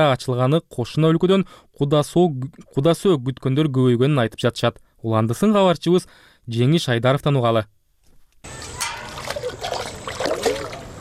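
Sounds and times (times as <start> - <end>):
speech: 0.0 - 7.8
water sloshing in a container carried from a pond at dawn: 8.5 - 10.9.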